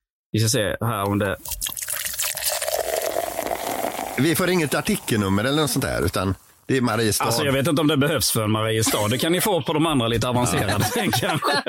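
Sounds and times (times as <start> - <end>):
speech: 0.3 - 1.8, 4.2 - 11.6
beer poured into a double-walled thermo glass: 1.4 - 6.7
laughter: 8.8 - 11.6.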